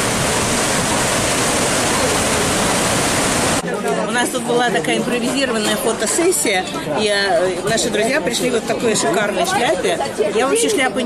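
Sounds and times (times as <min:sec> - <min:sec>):
ocean water rushing in the wake of a cruise liner: 0:00.0 - 0:03.6
speech: 0:04.2 - 0:11.0.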